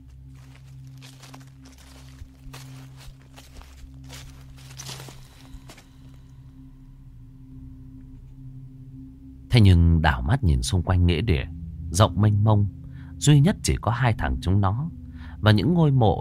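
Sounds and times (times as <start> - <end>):
rustling footsteps of many people walking around a vast graveyard: 0.0 - 6.3
steady low hum: 0.0 - 13.8
speech: 9.6 - 16.1.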